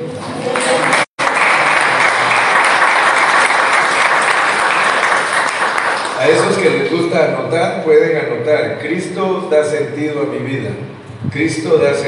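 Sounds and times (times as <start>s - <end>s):
congregation applauding loudly: 0.4s - 6.8s
speech: 6.6s - 12.0s.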